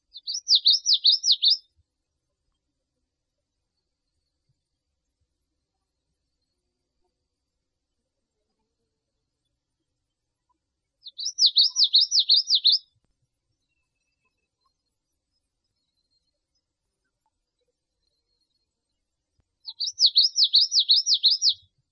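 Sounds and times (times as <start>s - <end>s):
Geothlypis nelsoni calling: 11.1s - 12.8s, 19.7s - 21.6s.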